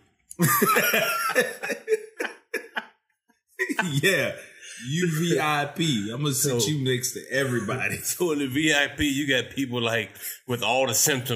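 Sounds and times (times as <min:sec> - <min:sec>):
speech: 0:00.4 - 0:02.1, 0:03.8 - 0:11.3
person in a loud coughing fit: 0:00.4 - 0:02.7
laughter: 0:00.4 - 0:02.8, 0:03.6 - 0:09.3.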